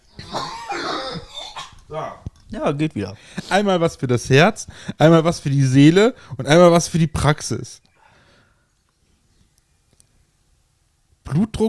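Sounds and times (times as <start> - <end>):
person coughing: 0.2 - 2.3
speech: 1.9 - 7.9, 11.3 - 11.6.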